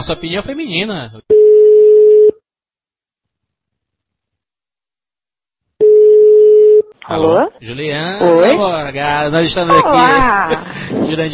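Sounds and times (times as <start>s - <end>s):
speech: 0.0s - 1.3s, 7.0s - 11.3s
ringback tone of an outgoing telephone call after dialing: 1.3s - 2.4s, 5.8s - 6.9s
laughter: 9.5s - 11.3s.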